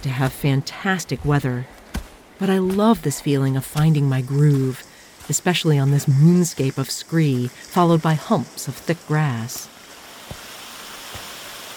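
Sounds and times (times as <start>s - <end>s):
speech: 0.0s - 1.8s, 2.4s - 10.4s
mountain stream water rushing: 7.6s - 11.7s.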